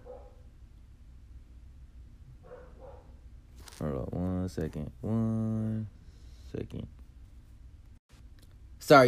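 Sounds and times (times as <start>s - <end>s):
dog barking downstairs: 0.0s - 0.5s, 2.4s - 3.2s
speech: 3.8s - 7.0s, 8.9s - 9.0s.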